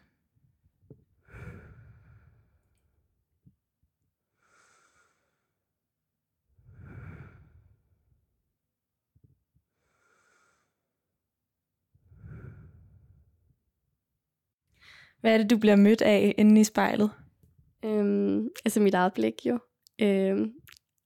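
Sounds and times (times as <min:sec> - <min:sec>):
slow deep breaths close to the microphone: 0:01.2 - 0:03.0, 0:04.4 - 0:05.7, 0:06.6 - 0:08.2, 0:09.7 - 0:11.0, 0:12.0 - 0:13.4, 0:14.8 - 0:15.2
speech: 0:15.2 - 0:17.2, 0:17.8 - 0:20.6.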